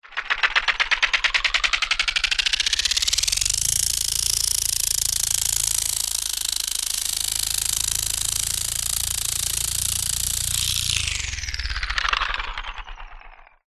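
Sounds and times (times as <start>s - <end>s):
science fiction micro flying drone helicopter starting, idling and stopping: 0.0s - 13.6s.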